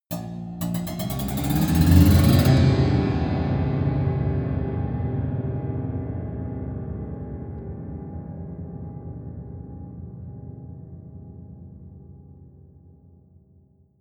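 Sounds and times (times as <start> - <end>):
accelerating piano twang: 0.1 - 5.9.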